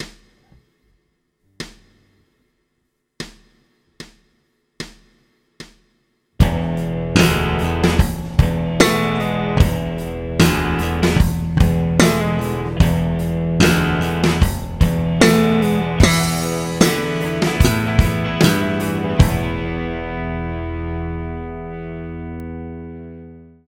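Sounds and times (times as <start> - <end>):
full band playing: 6.4 - 19.8
slap bass groove with open strings: 6.4 - 23.2.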